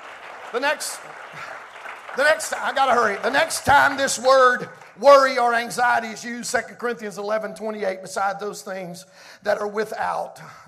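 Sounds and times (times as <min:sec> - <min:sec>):
crowd clapping: 0:00.0 - 0:06.1
speech: 0:00.5 - 0:10.6.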